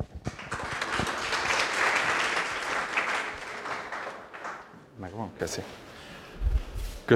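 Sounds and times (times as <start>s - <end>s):
audience applause welcoming a lecturer: 0.0s - 4.9s
speech: 5.2s - 5.8s.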